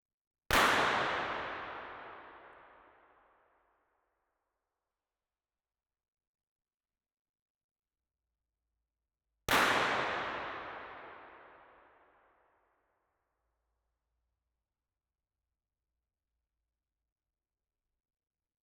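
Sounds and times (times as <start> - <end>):
binaural gunshots: 0.5 - 2.5, 9.5 - 11.4.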